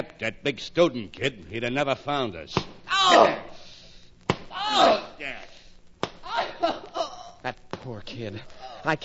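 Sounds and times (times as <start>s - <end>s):
speech: 0.2s - 3.6s, 4.7s - 5.4s, 7.4s - 9.0s
slaps and thuds of blows on a person: 2.5s - 2.8s, 4.2s - 4.6s, 6.0s - 6.4s
strained pained vocal cries and grunts: 4.5s - 5.4s, 6.2s - 7.4s.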